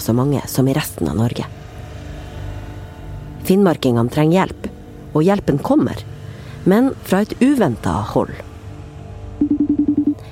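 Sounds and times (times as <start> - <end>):
speech: 0.0 - 1.6, 3.5 - 8.5
low hum: 0.0 - 10.3
telephone dialing beeps placing a phone call: 9.4 - 10.2.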